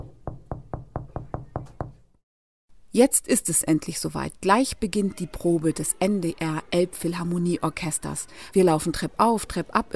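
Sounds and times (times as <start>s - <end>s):
sharp crisp knocks on a glass pane: 0.0s - 2.0s
speech: 3.0s - 9.9s.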